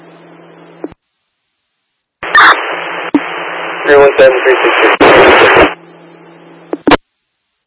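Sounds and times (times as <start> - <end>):
harsh radio transmission static: 2.2 - 5.8, 6.7 - 7.0
garbled voice over radio transmission: 3.8 - 5.7
speech: 3.9 - 5.7.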